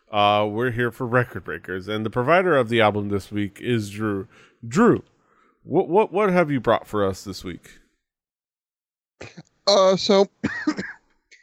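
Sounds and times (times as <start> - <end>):
speech: 0.1 - 7.8, 9.2 - 10.8
person clearing throat: 10.4 - 11.0
person coughing: 10.4 - 11.0.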